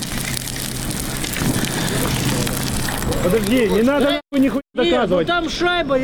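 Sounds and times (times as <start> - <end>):
campfire burning with dense crackle and hiss: 0.0 - 4.6
speech: 3.2 - 6.0.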